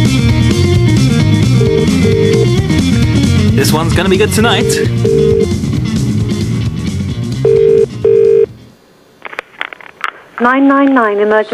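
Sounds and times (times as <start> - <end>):
music: 0.0 - 8.5
telephone double ringing tone on an outgoing call: 1.4 - 2.8, 4.2 - 5.6, 7.4 - 8.5
speech: 3.7 - 5.6, 10.4 - 11.5.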